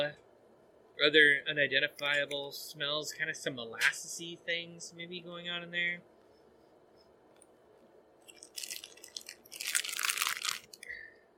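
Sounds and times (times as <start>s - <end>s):
speech: 0.0s - 0.2s, 1.0s - 6.1s
person biting and chewing a crunchy peanut butter cookie: 8.2s - 11.0s.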